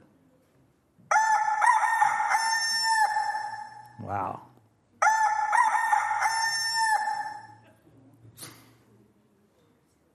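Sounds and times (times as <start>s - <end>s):
rooster crowing: 1.1s - 3.8s, 5.0s - 7.6s
speech: 4.1s - 4.5s.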